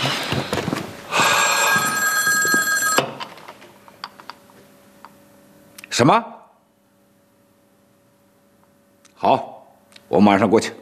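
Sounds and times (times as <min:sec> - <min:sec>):
telephone bell ringing: 0:01.3 - 0:03.3
speech: 0:06.0 - 0:06.4, 0:09.2 - 0:09.5, 0:10.1 - 0:10.8.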